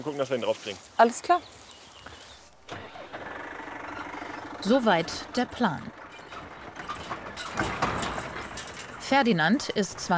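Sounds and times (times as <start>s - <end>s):
speech: 0.0s - 1.6s, 4.6s - 6.0s, 9.1s - 10.1s
car engine cranking, starting and running during a cattle roundup: 2.5s - 10.1s.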